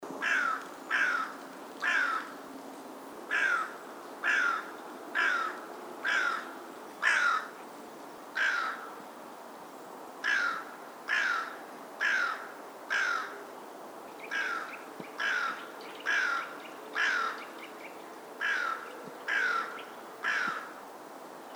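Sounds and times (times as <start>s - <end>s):
carrion crow calling: 0.2s - 2.4s, 3.3s - 7.6s, 8.4s - 9.0s, 10.2s - 13.4s, 14.2s - 17.6s, 18.4s - 20.8s.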